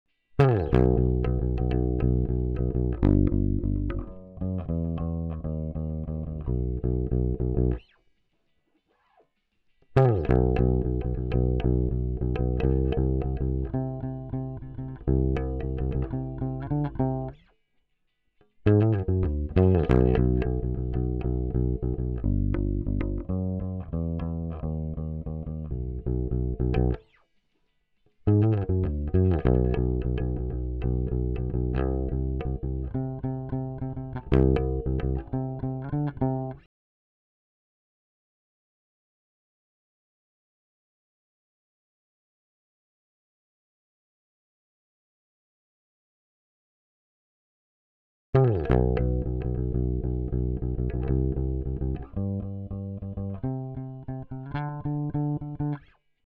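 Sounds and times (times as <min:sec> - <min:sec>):
dry punk bass: 0:00.4 - 0:07.8, 0:10.0 - 0:17.4, 0:18.7 - 0:27.0, 0:28.3 - 0:36.6, 0:48.4 - 0:55.8.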